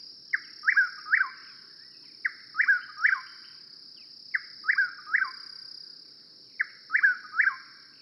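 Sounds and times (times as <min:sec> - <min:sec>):
continuous insect hum: 0:00.0 - 0:07.9
Chuck-will's-widow three-part whistled song: 0:00.3 - 0:03.6, 0:04.3 - 0:05.6, 0:06.5 - 0:07.9.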